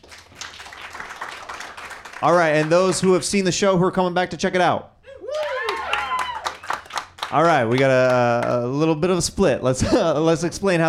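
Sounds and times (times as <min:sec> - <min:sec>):
audience applauding with many hands clapping: 0:00.0 - 0:03.3, 0:05.3 - 0:08.6
speech: 0:02.2 - 0:04.9, 0:07.3 - 0:10.8.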